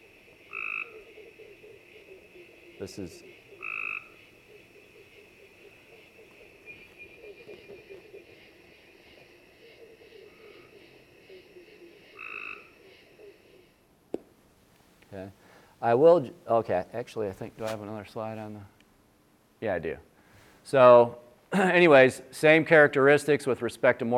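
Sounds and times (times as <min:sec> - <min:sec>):
gray tree frog trills: 0:00.0 - 0:13.9
hiss: 0:00.0 - 0:24.1
speech: 0:02.8 - 0:03.4, 0:15.2 - 0:18.8, 0:19.6 - 0:20.1, 0:20.7 - 0:24.1.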